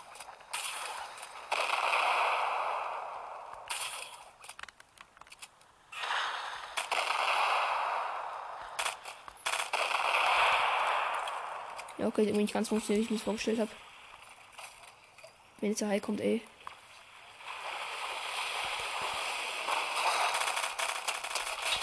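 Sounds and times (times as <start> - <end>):
video game explosions with debris noise: 0.0 - 4.3, 6.0 - 14.1, 17.3 - 21.8
speech: 12.0 - 13.8, 15.6 - 16.5.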